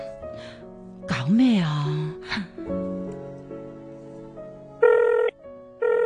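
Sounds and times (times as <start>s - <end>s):
speech: 1.3s - 1.7s
ringback tone of an outgoing telephone call: 4.8s - 6.0s.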